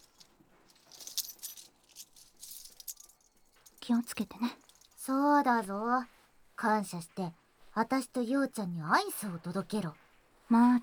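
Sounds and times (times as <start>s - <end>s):
metallic keys jangling: 0.0s - 3.8s, 4.6s - 5.0s
speech: 3.9s - 10.8s.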